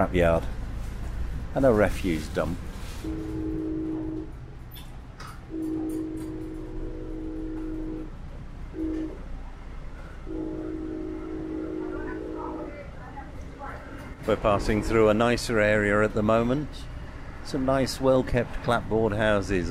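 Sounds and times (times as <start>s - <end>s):
speech: 0.0s - 0.6s, 1.5s - 3.5s, 14.3s - 16.9s, 17.5s - 19.6s
steady low rumble of the moving train: 0.0s - 19.6s
train horn sounded by the driver passing a residential area: 2.8s - 4.4s, 5.5s - 8.1s, 8.7s - 9.3s, 10.0s - 13.2s.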